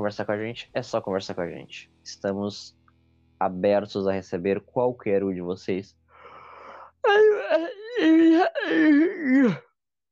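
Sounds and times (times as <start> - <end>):
speech: 0.0 - 2.8, 3.4 - 6.0, 7.0 - 9.7
drawn-out vocal yawn with moaning tones: 7.0 - 9.8.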